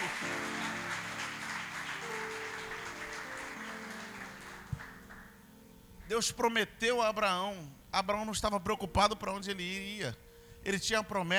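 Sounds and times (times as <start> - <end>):
congregation applauding: 0.0 - 5.5
sustained keyboard or organ chords: 0.0 - 10.2
speech: 6.1 - 11.3.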